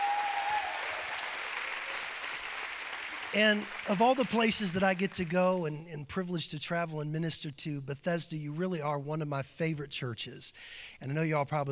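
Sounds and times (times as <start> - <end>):
church audience at a revival service clapping: 0.0 - 5.4
speech: 3.3 - 11.7.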